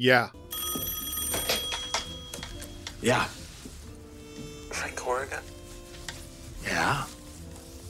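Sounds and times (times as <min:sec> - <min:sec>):
speech: 0:00.0 - 0:00.4, 0:03.0 - 0:03.4, 0:04.8 - 0:05.6, 0:06.6 - 0:07.2
telephone bell ringing: 0:00.5 - 0:02.8.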